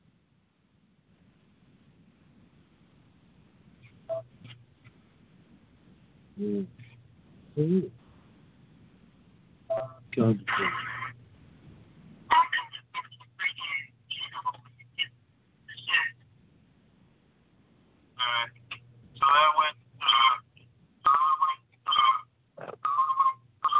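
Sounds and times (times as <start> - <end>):
steady low electrical hum: 0.0 - 23.7
speech: 6.4 - 6.9, 7.6 - 8.0, 10.2 - 10.9
Skype call ringtone: 22.8 - 23.7.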